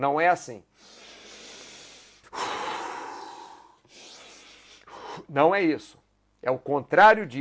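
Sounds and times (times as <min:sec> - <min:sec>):
speech: 0:00.0 - 0:01.0, 0:05.2 - 0:07.3
person taking rapid deep forceful breaths: 0:00.7 - 0:05.4.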